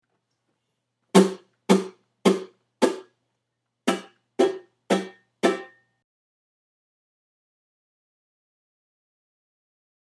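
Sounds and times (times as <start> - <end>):
ukulele strum block: 3.9 - 5.9.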